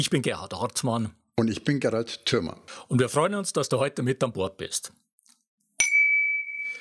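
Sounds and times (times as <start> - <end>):
speech: 0.0 - 5.0
glasses clinking in a toast: 5.8 - 6.7
sustained ringing tone of clinked glasses: 5.8 - 6.7.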